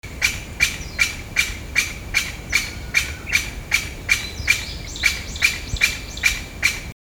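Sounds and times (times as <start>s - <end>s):
Chinese bamboo partridge calling: 0.2s - 6.9s.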